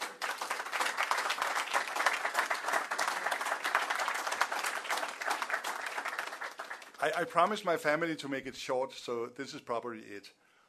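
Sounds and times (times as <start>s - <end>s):
room full of people applauding: 0.0s - 7.6s
speech: 7.0s - 10.4s.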